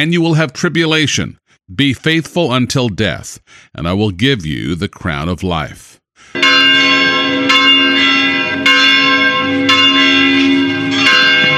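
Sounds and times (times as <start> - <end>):
speech: 0.0 - 8.1
church bells pealing in Khartoum Sudan for Christmas: 6.3 - 11.5.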